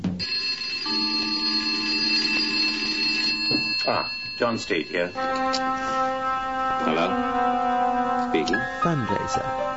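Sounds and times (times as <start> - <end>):
small bell ringing: 0.2 - 6.2
speech: 3.9 - 5.9, 6.8 - 7.5, 8.3 - 9.7.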